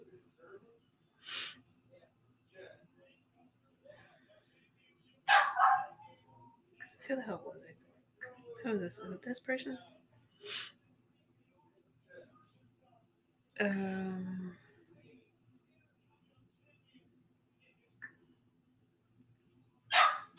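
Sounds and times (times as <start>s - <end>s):
quiet low hum: 0.0s - 20.3s
dog barking: 5.3s - 6.0s, 19.9s - 20.3s
speech: 8.7s - 10.7s, 13.6s - 14.6s.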